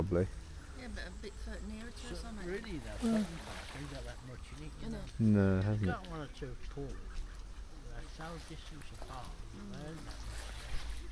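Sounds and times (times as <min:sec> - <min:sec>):
speech: 0:00.0 - 0:07.3, 0:08.0 - 0:10.6
ducks splashing on a park pool: 0:02.2 - 0:05.1, 0:05.9 - 0:11.1.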